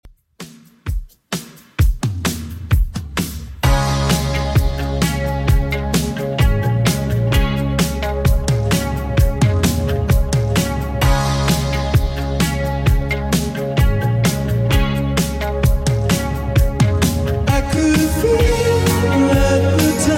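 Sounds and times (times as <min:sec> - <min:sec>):
clean 80s drum machine beat: 0:00.0 - 0:20.1.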